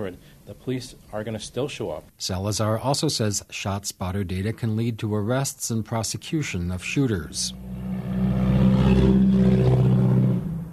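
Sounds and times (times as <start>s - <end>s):
speech: 0.0s - 7.7s
loud car engine roaring past on a street: 6.8s - 10.7s.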